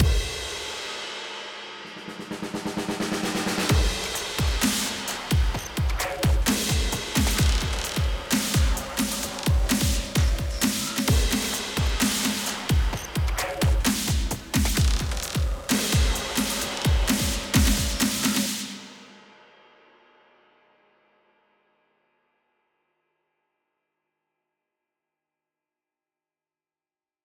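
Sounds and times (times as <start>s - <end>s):
electro rock drums: 0.0s - 0.5s, 3.4s - 18.7s.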